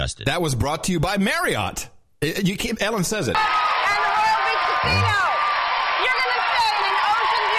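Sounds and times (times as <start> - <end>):
speech: 0.0 - 3.7, 4.8 - 5.3
studio audience cheering and whooping: 3.4 - 7.5
low voiced shout: 4.7 - 5.4.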